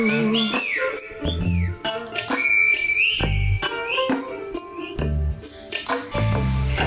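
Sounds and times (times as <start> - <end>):
Silbo Gomero whistled language echoing on the island of La Gomera: 0.0 - 4.7
steady musical backing: 0.0 - 6.8.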